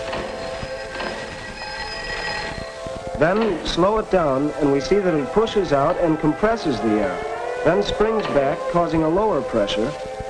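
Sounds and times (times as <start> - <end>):
bell ringing and vibrating: 0.1 - 3.7
speech: 3.2 - 10.2.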